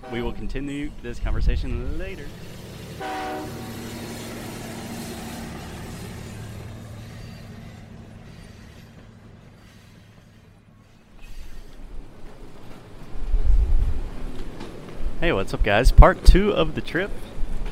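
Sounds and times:
train horn blast: 0.0 - 0.6, 2.9 - 4.3
speech: 0.0 - 3.6, 15.2 - 17.3
train rumbling: 0.0 - 17.7.

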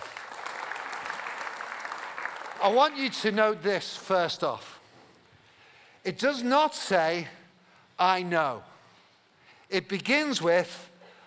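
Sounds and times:
audience applauding: 0.0 - 2.9
speech: 2.6 - 4.7, 6.0 - 7.4, 8.0 - 8.7, 9.7 - 10.9.

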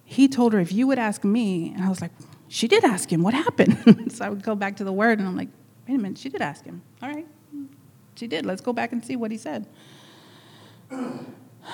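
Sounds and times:
speech: 0.2 - 7.3, 8.2 - 10.0, 10.9 - 11.7
person clearing throat: 10.9 - 11.7.

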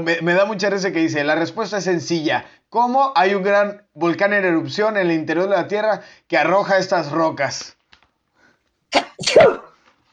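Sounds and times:
speech: 0.0 - 7.8, 8.9 - 9.7
person sneezing: 8.9 - 9.8.

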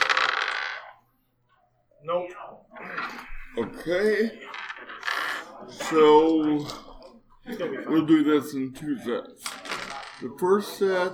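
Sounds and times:
two dice tumbling across a surface: 0.0 - 1.0, 3.4 - 6.6, 9.4 - 10.3
speech: 2.0 - 2.9, 3.6 - 4.6, 5.7 - 6.8, 7.5 - 9.5, 10.2 - 11.1
laughter: 2.7 - 11.1.

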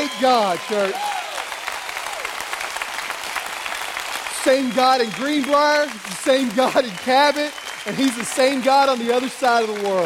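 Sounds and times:
roomful of people applauding: 0.0 - 10.0
speech: 0.2 - 1.1, 4.4 - 10.0.

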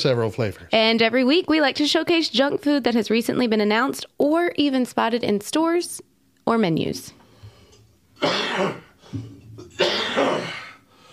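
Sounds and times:
speech: 0.0 - 7.2, 8.2 - 10.6
sick person coughing: 8.2 - 10.8
throat clearing: 8.2 - 10.8.

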